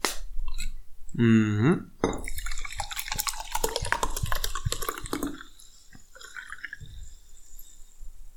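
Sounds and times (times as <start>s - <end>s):
speech: 1.2s - 1.9s
water dripping: 2.0s - 8.1s.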